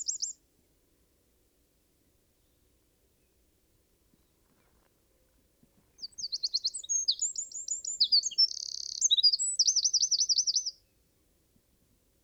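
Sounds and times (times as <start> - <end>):
Eurasian wren Troglodytes troglodytes song: 0.0 - 0.4, 6.0 - 10.9.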